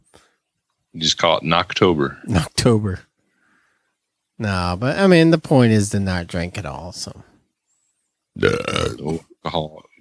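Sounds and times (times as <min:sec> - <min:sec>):
speech: 0:00.9 - 0:03.1, 0:04.4 - 0:07.3, 0:08.4 - 0:09.9
loud drawn-out throaty burp: 0:08.4 - 0:09.2.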